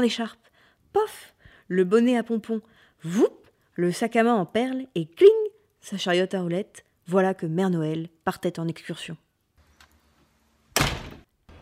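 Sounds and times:
speech: 0:00.0 - 0:09.2
door shutting with a thud: 0:10.7 - 0:11.5.

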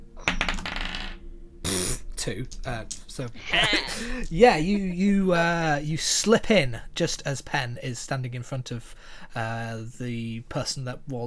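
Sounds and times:
dice rolling on a hard tabletop: 0:00.2 - 0:01.2, 0:02.5 - 0:03.3
speech: 0:02.2 - 0:11.2.

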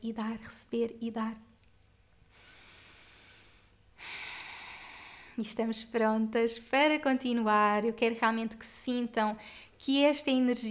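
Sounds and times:
speech: 0:00.0 - 0:01.5, 0:05.4 - 0:10.6
person breathing out slowly during a guided breathing exercise: 0:02.3 - 0:05.4.

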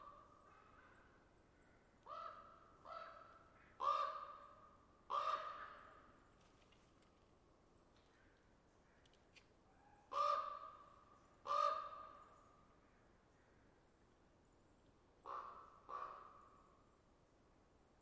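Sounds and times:
ravens calling back and forth on a Saturday evening: 0:02.0 - 0:06.1, 0:09.7 - 0:12.2, 0:15.2 - 0:16.5.

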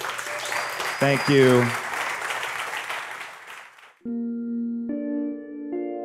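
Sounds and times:
audience applause: 0:00.0 - 0:04.0
speech: 0:01.0 - 0:01.8
sustained musical chords: 0:04.0 - 0:06.0.

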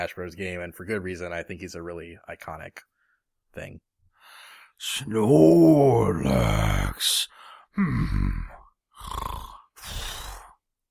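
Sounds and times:
speech: 0:00.0 - 0:02.9, 0:03.5 - 0:03.9, 0:04.8 - 0:10.1
person imitating snoring with their voice: 0:07.8 - 0:10.6.

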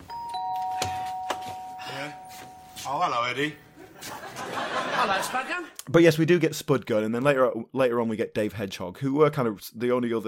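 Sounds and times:
doorbell chime ringing with sustained electronic tone: 0:00.0 - 0:03.6
speech: 0:02.8 - 0:10.2
laughter: 0:03.8 - 0:05.7.

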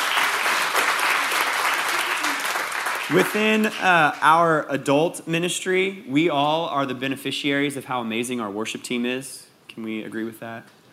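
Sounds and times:
audience clapping steadily: 0:00.0 - 0:04.3
speech: 0:03.1 - 0:10.8.

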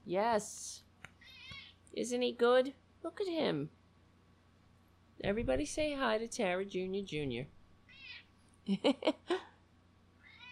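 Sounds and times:
speech: 0:00.1 - 0:00.8, 0:01.9 - 0:03.8, 0:05.2 - 0:07.6, 0:08.7 - 0:09.5
cat meowing: 0:01.2 - 0:01.7, 0:07.9 - 0:08.3, 0:10.2 - 0:10.5
faint high squeaky sounds: 0:01.2 - 0:01.8, 0:07.9 - 0:08.3, 0:10.2 - 0:10.5.

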